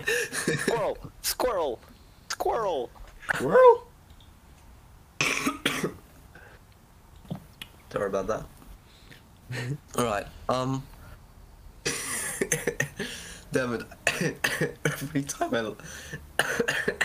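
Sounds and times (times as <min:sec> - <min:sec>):
speech: 0:00.4 - 0:03.9, 0:07.9 - 0:08.6, 0:09.5 - 0:10.9, 0:12.4 - 0:17.0
harsh raspy coughing from a person with a cold: 0:05.2 - 0:06.0, 0:11.8 - 0:13.3, 0:14.0 - 0:15.1, 0:16.4 - 0:17.0.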